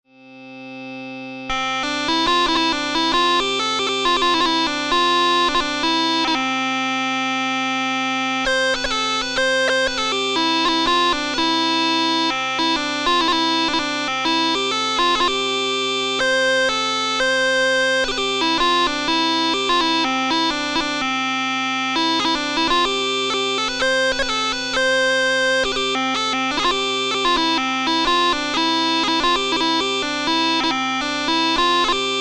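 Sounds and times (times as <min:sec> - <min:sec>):
huemmelchen bagpipe playing in C major: 0:00.1 - 0:32.1.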